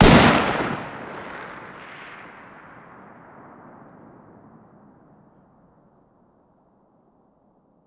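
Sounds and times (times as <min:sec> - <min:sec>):
distant fire outdoors: 0:00.0 - 0:05.7.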